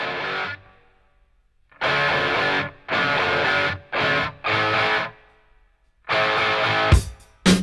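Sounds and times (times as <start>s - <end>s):
distorted hard rock electric guitar riff with chunky chords: 0.0s - 0.9s, 1.7s - 5.3s, 6.1s - 7.6s.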